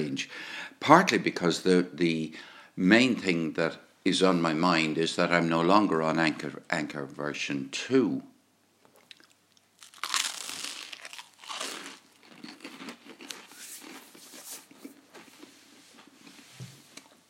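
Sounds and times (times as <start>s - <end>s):
speech: 0.0s - 8.3s
someone crunching into supermarket granary bread: 9.2s - 14.2s.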